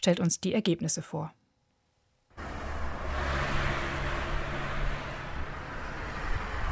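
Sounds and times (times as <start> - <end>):
speech: 0.0 - 1.4
road traffic noise: 2.3 - 6.7
car accelerating: 2.4 - 6.7.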